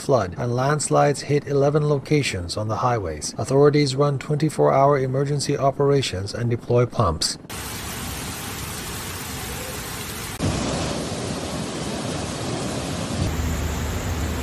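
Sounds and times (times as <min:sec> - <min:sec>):
speech: 0:00.0 - 0:07.8
heavy torrential rain roaring: 0:07.5 - 0:14.4.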